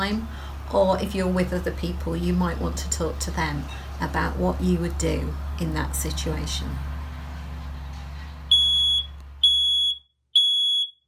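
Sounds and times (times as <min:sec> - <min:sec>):
speech: 0:00.0 - 0:06.9
smoke alarm beeping: 0:08.5 - 0:11.0.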